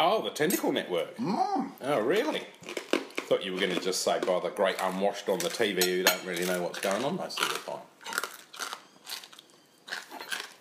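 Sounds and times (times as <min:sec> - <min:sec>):
speech: 0:00.2 - 0:08.2
person chewing a crispy pork snack: 0:02.6 - 0:05.7, 0:06.4 - 0:10.5.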